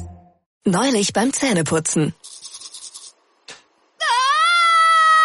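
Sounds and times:
speech: 0.7 - 2.3
short scratchy rubbing noises: 2.2 - 3.2
person letting out a loud sustained high-pitched scream: 4.0 - 5.2.

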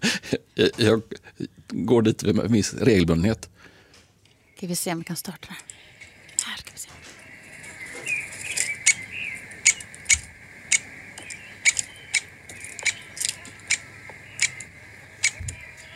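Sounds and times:
speech: 0.3 - 3.5, 4.6 - 5.8
two lesser spotted woodpeckers giving sharp high ticking notes: 5.5 - 15.9.

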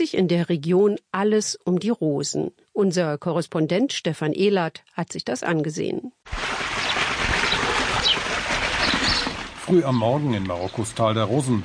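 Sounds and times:
speech: 0.0 - 6.8, 9.7 - 11.6
babbling mountain stream: 6.3 - 11.6.

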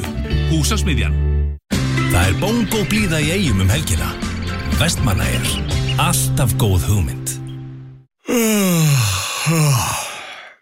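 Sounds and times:
speech: 0.5 - 1.3, 2.1 - 7.4, 8.3 - 9.9
long drawn-out human yawn: 8.2 - 10.6.

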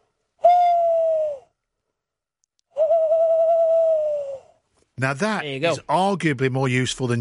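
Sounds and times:
person imitating owl hoots: 0.4 - 1.5, 2.7 - 4.6
speech: 5.0 - 7.1.

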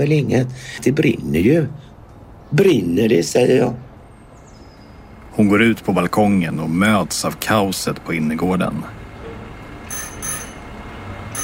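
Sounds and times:
speech: 0.0 - 1.9, 2.5 - 3.8, 5.4 - 9.0
doorbell ringing at an apartment door during a building fire: 9.9 - 11.4.

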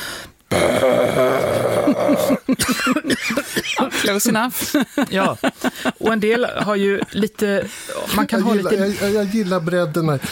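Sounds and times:
raspy vocal growl made with the false vocal folds: 0.5 - 2.5
harsh coughs: 0.5 - 4.8
laughter: 1.9 - 9.5
speech: 2.3 - 10.3.

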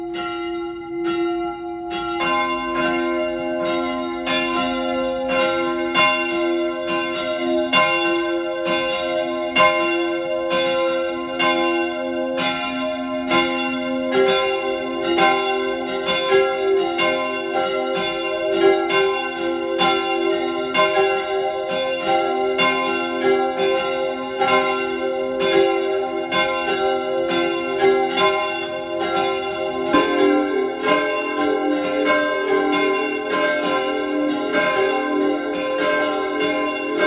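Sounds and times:
church bells of a parish church ringing a peal at noon: 0.0 - 37.0.

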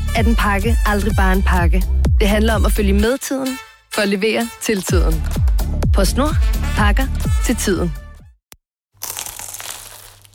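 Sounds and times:
speech: 0.2 - 5.4, 6.0 - 8.0
crisp bite into a flaky croissant: 9.0 - 10.3.

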